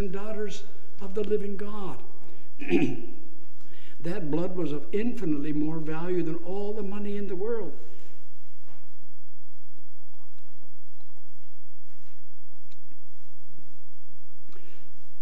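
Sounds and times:
speech: 0.0 - 3.2, 4.0 - 7.9
person with 100-day cough coughing harshly: 2.6 - 3.2.

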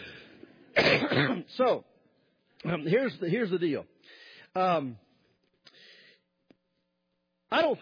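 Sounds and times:
loud throat clearing: 0.8 - 1.5
speech: 1.0 - 1.9, 2.6 - 5.0, 7.5 - 7.8.

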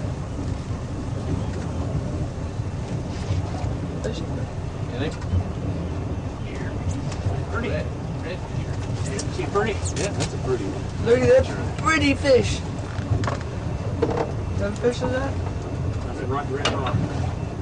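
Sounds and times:
boat engine rumbling: 0.0 - 17.6
water churning and sloshing against a boat hull: 0.0 - 17.6
wind buffeting: 0.0 - 17.6
speech: 9.6 - 12.7, 14.6 - 15.5, 16.3 - 17.3.

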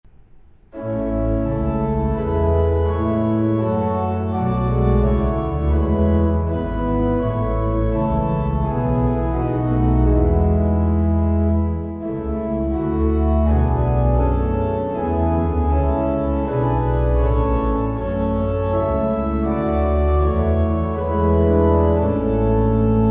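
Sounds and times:
organ playing hymns: 0.7 - 23.0.

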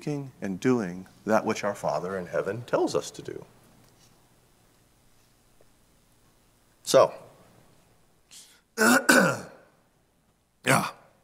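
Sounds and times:
speech: 0.0 - 3.6, 6.9 - 7.2, 8.8 - 9.0
person coughing: 8.8 - 9.6
throat clearing: 8.8 - 9.6.

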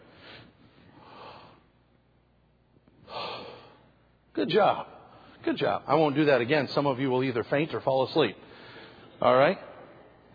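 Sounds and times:
group of people taking a deep breath in and letting it out: 0.0 - 1.8, 3.0 - 4.0, 8.4 - 9.2
speech: 4.4 - 8.5, 9.2 - 9.7.

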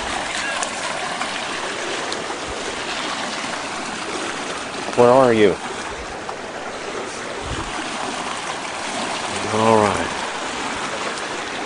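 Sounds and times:
floodwater rushing over a small bridge: 0.0 - 11.6
floodwater splashes: 0.0 - 11.6
speech: 5.0 - 5.7.

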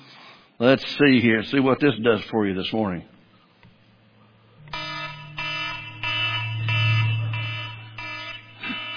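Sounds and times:
speech: 0.6 - 3.1
low hum: 3.7 - 8.9
stopwatch and alarm clock alarm ringing with harsh buzzy electronic beeps: 4.6 - 8.9.

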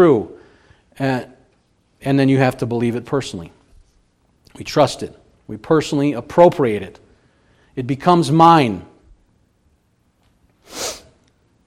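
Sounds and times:
speech: 0.0 - 0.3, 1.0 - 1.3, 2.0 - 3.6, 4.5 - 7.0, 7.8 - 8.9
person sneezing: 10.6 - 11.2.

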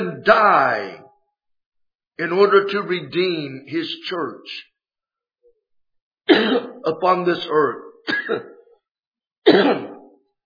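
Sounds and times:
speech: 0.2 - 1.0, 2.2 - 4.7, 6.3 - 8.5, 9.4 - 9.9
man preaching a sermon coughing: 6.3 - 6.8, 8.1 - 8.5, 9.5 - 10.0.

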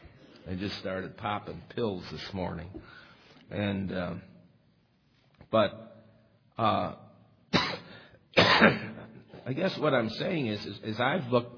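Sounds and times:
speech: 0.5 - 4.3, 5.5 - 6.0, 6.6 - 7.0, 8.6 - 11.5
man clearing his throat: 7.5 - 9.5
man coughing at range: 7.5 - 9.5.

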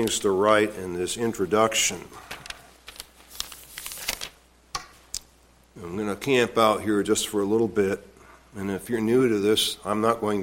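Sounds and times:
speech: 0.0 - 2.4, 5.8 - 10.4
paper pages of a printed sermon rustling as it is opened: 2.2 - 5.1.

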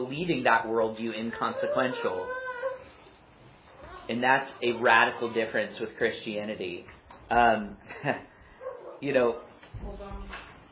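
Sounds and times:
speech: 0.0 - 2.4, 4.1 - 8.3, 9.0 - 10.0
dog barking in short yelping bursts: 8.6 - 9.1.

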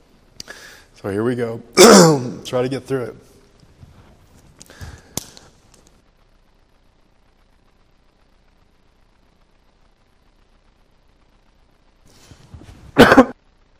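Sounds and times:
speech: 1.0 - 3.3
person with allergies clearing their throat: 1.8 - 2.4, 13.0 - 13.4
person with allergies coughing: 1.8 - 2.4, 13.0 - 13.4.

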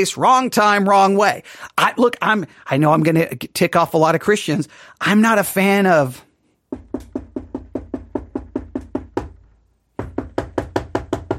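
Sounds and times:
speech: 0.0 - 7.1
knocking on a wooden door: 6.7 - 9.4, 10.0 - 11.3.

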